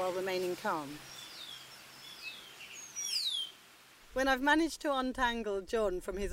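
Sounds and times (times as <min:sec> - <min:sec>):
speech: 0:00.0 - 0:01.2, 0:04.2 - 0:06.3
wild birds singing and chirping on St. Lucia: 0:00.0 - 0:04.2.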